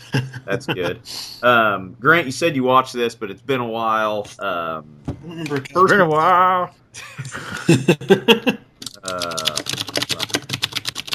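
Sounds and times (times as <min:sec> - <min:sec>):
person laughing: 0:00.0 - 0:01.1, 0:07.0 - 0:09.6
speech: 0:00.1 - 0:09.5
rapid typing on an aluminum computer keyboard: 0:08.8 - 0:11.1.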